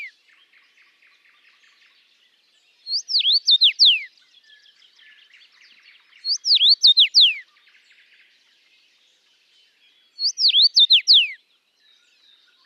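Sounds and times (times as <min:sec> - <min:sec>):
common rosefinch whistled song in Latvia: 0:00.0 - 0:12.6
faint common rosefinch chirps in Latvia: 0:00.0 - 0:12.6.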